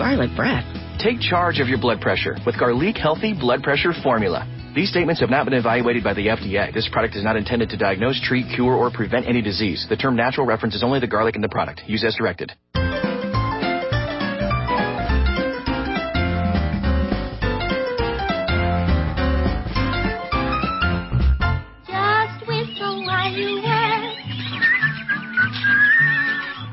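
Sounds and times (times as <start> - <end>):
bouncy upbeat instrumental tune: 0.0 - 11.0, 12.7 - 26.7
speech: 0.1 - 12.7
whistled melody: 12.8 - 26.7.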